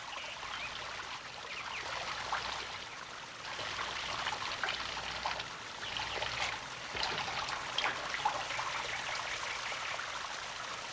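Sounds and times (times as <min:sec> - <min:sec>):
water trickling out of holes in a bottle: 0:00.0 - 0:10.9.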